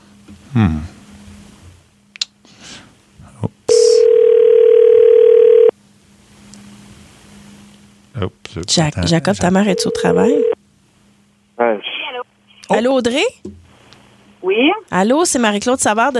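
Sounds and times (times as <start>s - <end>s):
speech: 0.5s - 1.0s, 8.6s - 10.5s, 12.8s - 13.4s, 14.4s - 16.1s
electronic telephone ring tone: 4.0s - 5.7s, 9.7s - 10.6s.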